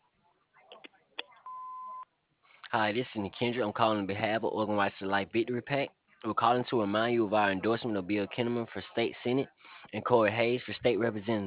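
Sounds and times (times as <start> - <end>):
voicemail beep before recording a message: 1.4 - 2.0
speech: 2.7 - 11.4.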